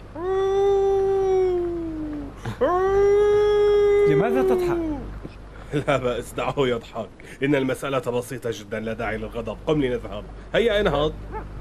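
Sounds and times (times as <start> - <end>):
voice imitating a wolf howl: 0.1 - 5.2
speech: 4.1 - 4.9, 5.7 - 11.4.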